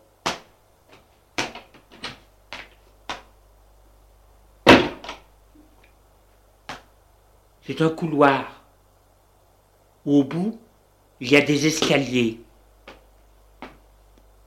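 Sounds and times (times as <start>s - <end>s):
door opening thud: 4.7s - 5.2s
speech: 7.7s - 8.6s, 10.0s - 10.6s, 11.2s - 12.4s.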